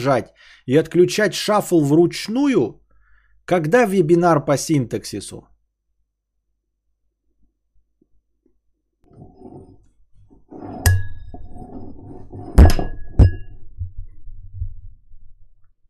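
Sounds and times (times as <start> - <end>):
speech: 0.0 - 2.8, 3.5 - 5.5
glass knocking against a microphone: 12.4 - 14.8.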